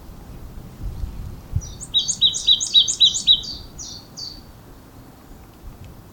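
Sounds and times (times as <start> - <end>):
Marsh tit sharp high chipping notes: 1.6 - 4.6.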